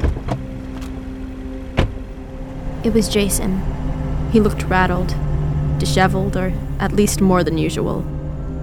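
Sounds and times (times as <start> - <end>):
police car engine idling: 0.0 - 8.6
police car door thud: 1.8 - 2.0
speech: 2.8 - 5.2, 5.8 - 8.2.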